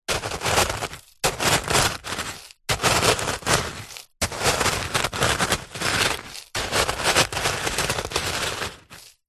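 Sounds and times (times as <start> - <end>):
small stones moved and dug with a wooden baton: 0.1 - 9.2.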